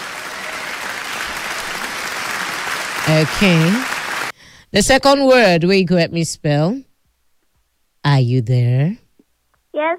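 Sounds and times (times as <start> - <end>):
audience applause at a spelling contest: 0.0 - 4.3
speech: 3.1 - 3.9, 4.7 - 6.9, 8.0 - 9.0, 9.8 - 9.9.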